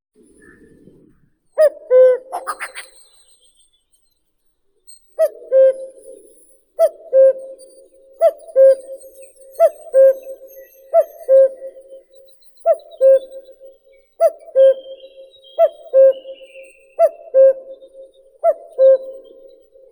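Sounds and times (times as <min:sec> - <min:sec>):
common cuckoo Cuculus canorus calling: 0:01.6 - 0:03.4, 0:05.2 - 0:12.0, 0:12.6 - 0:19.9.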